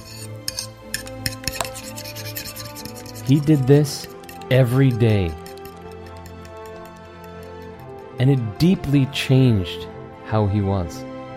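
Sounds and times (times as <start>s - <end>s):
dishes being washed with rubbing and scrubbing: 0.0s - 8.0s
speech: 3.3s - 5.4s, 8.2s - 11.1s.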